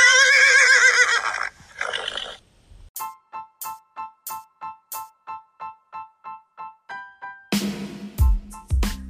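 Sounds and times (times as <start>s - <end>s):
horse whinnying: 0.0s - 2.4s
horse snorting: 1.2s - 2.4s.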